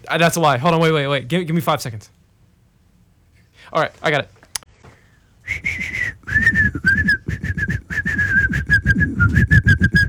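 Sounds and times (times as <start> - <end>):
speech: 0.1 - 2.2, 3.6 - 4.4
person whistling an imitation bird call: 5.5 - 10.0.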